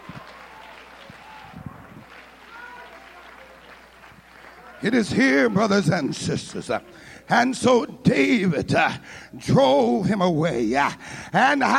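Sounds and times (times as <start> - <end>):
audience clapping hands in a dense wash of applause: 0.0 - 6.2
murmuring voices: 0.0 - 8.5
speech: 4.8 - 11.7.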